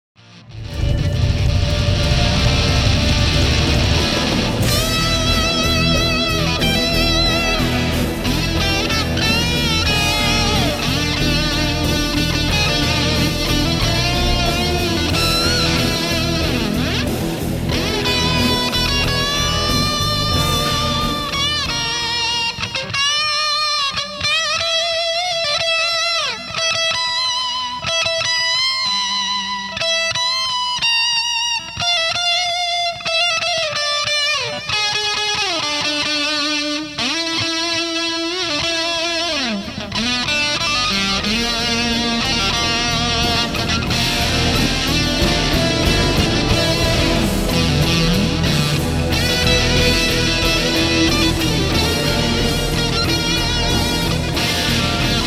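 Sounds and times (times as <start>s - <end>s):
guitar through a fuzz pedal: 0.2s - 55.2s.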